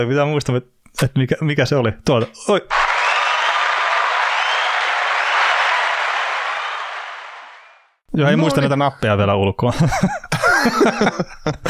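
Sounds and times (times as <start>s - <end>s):
speech: 0.0s - 2.9s, 8.2s - 11.6s
crowd applause sound effect played from a soundboard: 2.7s - 8.0s
laughter: 9.7s - 11.6s.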